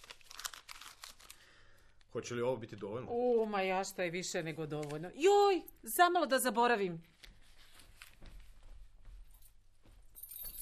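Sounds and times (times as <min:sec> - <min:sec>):
speech: 0:02.1 - 0:07.2
keys jangling as they are handed over: 0:10.1 - 0:10.6.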